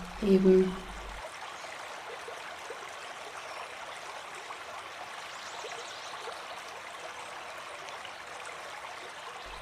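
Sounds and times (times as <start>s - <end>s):
rushing river water: 0.0s - 9.6s
speech: 0.2s - 0.8s.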